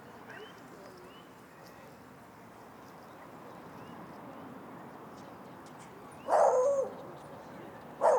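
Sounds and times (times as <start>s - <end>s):
dog barking outdoors at a lake: 6.3s - 6.9s, 8.0s - 8.1s.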